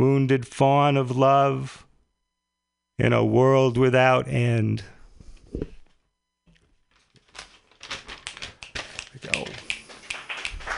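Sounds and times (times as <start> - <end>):
speech: 0.0 - 1.8, 3.0 - 5.8
small studio audience clapping: 8.2 - 10.7.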